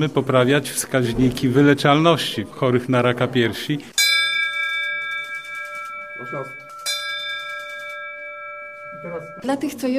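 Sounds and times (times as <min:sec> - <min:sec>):
speech: 0:00.0 - 0:04.0, 0:06.2 - 0:06.6, 0:09.0 - 0:09.9
bright metal hospital bell rung to mark the end of breast cancer treatment: 0:04.0 - 0:09.9.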